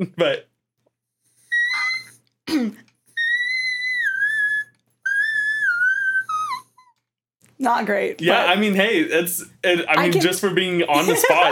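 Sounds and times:
speech: 0.0s - 0.5s, 7.6s - 11.5s
voice singing high whistle-register notes: 3.2s - 6.7s
laughter: 9.8s - 11.5s.

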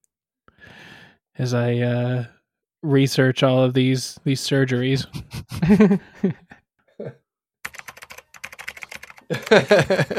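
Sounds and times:
speech: 1.4s - 7.2s, 9.3s - 10.1s
laughter: 5.1s - 6.6s, 9.3s - 10.1s
computer keyboard typing: 7.6s - 10.1s.

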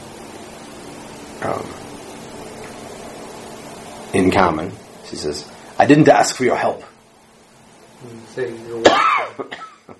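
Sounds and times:
speech: 1.4s - 1.8s, 4.1s - 6.9s, 8.0s - 9.9s
person with a cold coughing: 8.8s - 9.9s.

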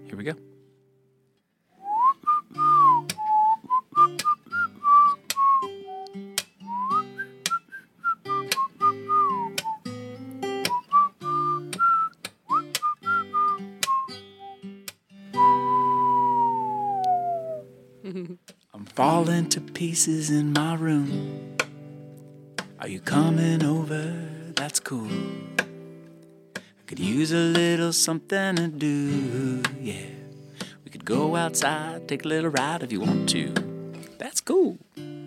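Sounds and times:
speech: 0.1s - 0.5s, 19.3s - 21.5s, 22.8s - 25.6s, 26.9s - 30.1s, 31.1s - 33.7s
whistled melody: 1.8s - 14.7s, 15.3s - 17.7s.

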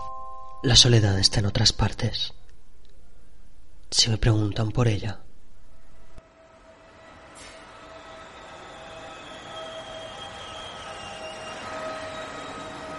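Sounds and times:
speech: 0.6s - 2.4s, 3.9s - 5.2s
commuter train rumbling on rails: 6.2s - 12.9s
thin metallic whines and wheel squeal: 6.3s - 12.9s.

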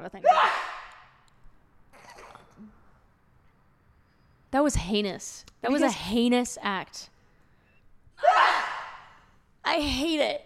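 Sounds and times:
speech: 0.0s - 0.6s, 4.6s - 7.1s, 9.7s - 10.4s
loud sneeze: 0.2s - 1.0s, 8.2s - 9.2s.

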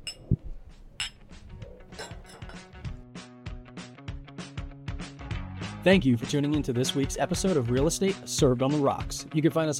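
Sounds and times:
glasses clinking in a toast: 0.0s - 0.4s, 1.0s - 2.9s
speech: 5.8s - 9.7s.

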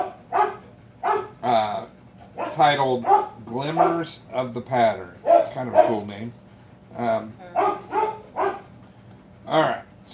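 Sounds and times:
dog barking: 0.0s - 1.4s, 2.4s - 4.1s, 5.2s - 6.0s, 7.5s - 8.7s
speech: 2.6s - 7.6s, 9.5s - 10.1s.

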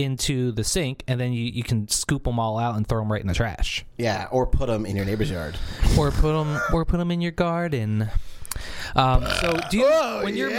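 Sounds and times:
speech: 0.0s - 10.5s
deep croaky burp: 9.0s - 10.2s.

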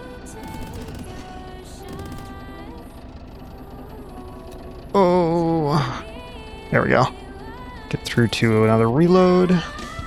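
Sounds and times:
mechanical rumble in video game battle: 0.0s - 10.0s
video game boss cannon firing: 0.3s - 4.7s
speech: 5.0s - 5.5s, 6.7s - 7.2s, 8.0s - 9.8s.

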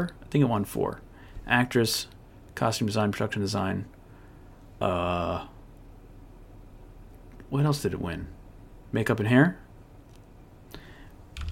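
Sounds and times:
speech: 0.0s - 4.0s, 4.8s - 5.5s, 7.5s - 9.6s
low hum: 0.0s - 11.5s
computer keyboard clicks: 11.3s - 11.5s.

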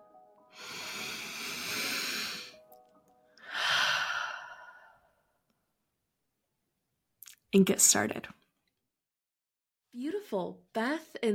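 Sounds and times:
person taking a deep breath: 0.5s - 2.6s, 3.4s - 5.2s
speech: 7.5s - 8.4s, 10.0s - 11.3s.

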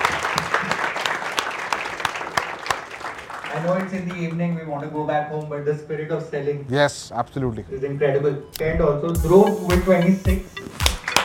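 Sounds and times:
audience clapping for everyone who took part: 0.0s - 5.2s, 10.6s - 11.2s
speech: 3.6s - 11.2s.

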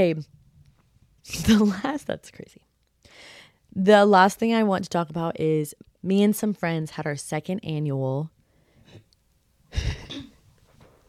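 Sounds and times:
speech: 0.0s - 0.4s, 1.2s - 9.0s, 9.7s - 10.3s
faint breathy sounds: 3.0s - 3.7s, 8.4s - 9.1s
rough gruff throat clearing: 9.8s - 10.4s.

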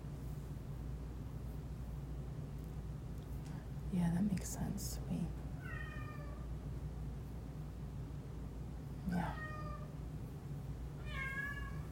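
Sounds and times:
steady low hum: 0.0s - 11.8s
speech: 3.9s - 5.5s
cat meowing: 5.6s - 6.4s, 9.2s - 9.9s, 11.0s - 11.8s.

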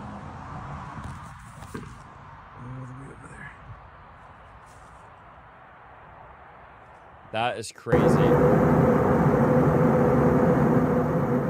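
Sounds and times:
speech: 7.3s - 9.0s
low droning roar inside an airplane cabin from a passenger video: 7.9s - 11.4s.

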